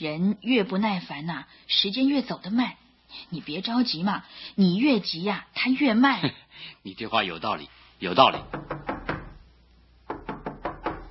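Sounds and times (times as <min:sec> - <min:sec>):
speech: 0:00.0 - 0:08.9
knocking on a door: 0:08.4 - 0:09.4, 0:10.1 - 0:11.1.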